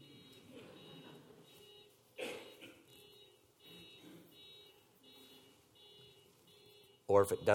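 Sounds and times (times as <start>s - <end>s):
car alarm blaring with harsh buzzing tones: 0.0s - 7.5s
speech: 7.1s - 7.5s.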